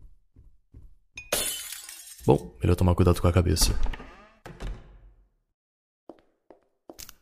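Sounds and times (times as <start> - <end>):
speech: 2.3 - 4.1
kitchen door unlocking and opening with heavy clunks: 3.6 - 5.1.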